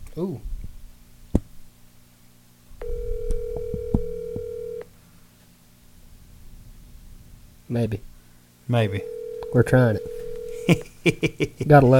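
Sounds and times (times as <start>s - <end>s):
speech: 0.2s - 0.5s, 7.7s - 8.1s, 8.7s - 11.9s
steady electronic phone dialing tone while reconnecting a dropped call: 2.8s - 4.9s, 9.0s - 10.7s
laughter: 10.5s - 11.9s.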